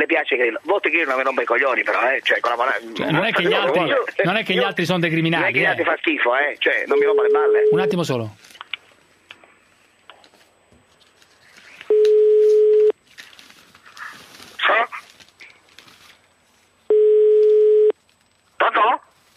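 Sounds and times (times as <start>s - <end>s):
speech: 0.0s - 8.5s
faint sounds: 0.0s - 19.3s
telephone ringing: 6.9s - 8.2s, 11.9s - 12.9s, 16.9s - 17.9s.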